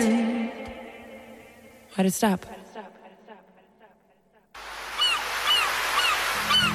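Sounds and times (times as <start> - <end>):
speech: 2.0 - 2.6
surf washing in: 4.6 - 6.7
seagulls calling over the sea: 4.9 - 6.7.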